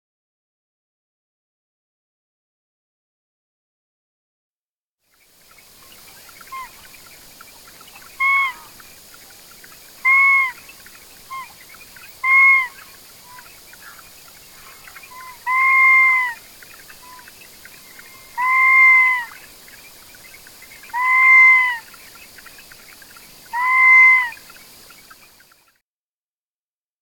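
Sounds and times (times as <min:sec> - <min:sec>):
huala bird calling: 0:05.6 - 0:25.8.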